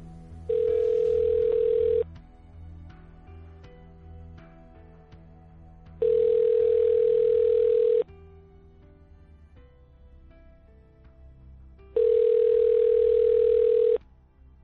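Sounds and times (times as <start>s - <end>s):
telephone ringback tone: 0.5s - 2.0s, 6.0s - 8.0s, 12.0s - 14.0s.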